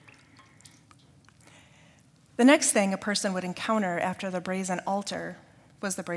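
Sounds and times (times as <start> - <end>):
water dripping into a basin: 0.0 - 1.7
soft continuous watery background: 0.0 - 6.1
speech: 2.4 - 6.1.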